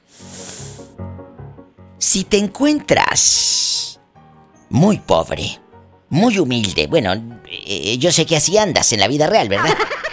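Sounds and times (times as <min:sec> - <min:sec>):
snake hissing: 0:00.0 - 0:01.0
speech: 0:02.0 - 0:03.6, 0:04.7 - 0:10.0
laughter: 0:09.5 - 0:10.1.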